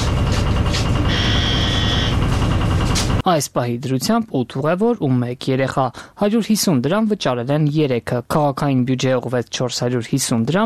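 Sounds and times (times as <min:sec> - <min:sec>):
bus rumble: 0:00.0 - 0:03.2
bus ticket validator rejection beep when a ticket is scanned: 0:01.1 - 0:02.2
speech: 0:03.2 - 0:10.6.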